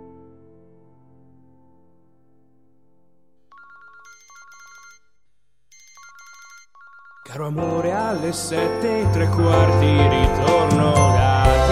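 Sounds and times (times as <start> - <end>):
mobile phone electronic ringtone ringing in a pocket: 3.5 - 5.1, 5.8 - 11.6
speech: 7.3 - 11.2.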